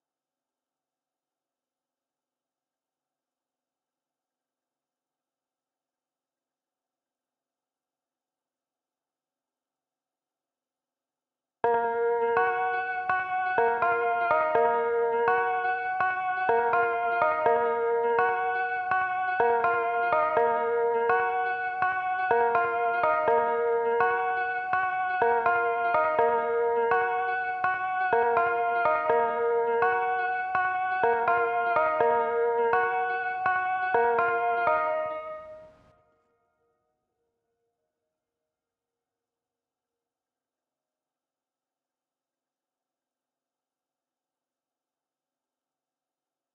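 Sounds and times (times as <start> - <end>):
bell melody loop in A-sharp minor at 165 BPM: 11.7 - 35.6.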